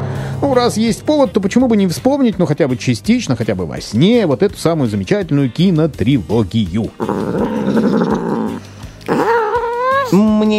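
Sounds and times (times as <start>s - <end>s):
speech: 0.4s - 8.0s
domestic cat growling: 6.9s - 10.2s.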